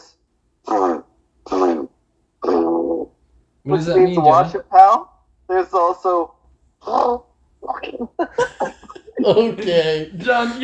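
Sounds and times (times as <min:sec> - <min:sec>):
person blurting wet sputtering fart imitations: 0:00.0 - 0:03.1, 0:06.8 - 0:08.0
speech: 0:03.6 - 0:10.6.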